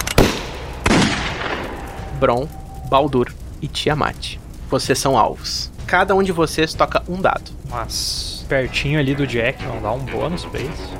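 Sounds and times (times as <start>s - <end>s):
loud sharp gunshots with long echoing tails: 0.0s - 2.2s
speech: 2.2s - 10.9s.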